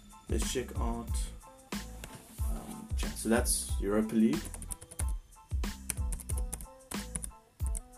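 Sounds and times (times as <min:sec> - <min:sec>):
speech: 0:00.3 - 0:01.4, 0:03.2 - 0:04.6
typing on a computer keyboard: 0:04.4 - 0:05.2, 0:05.9 - 0:07.8.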